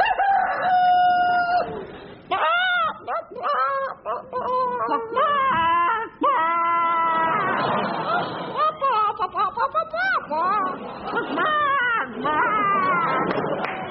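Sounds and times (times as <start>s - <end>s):
rooster crowing: 0.0s - 1.8s
laughter: 0.0s - 13.8s.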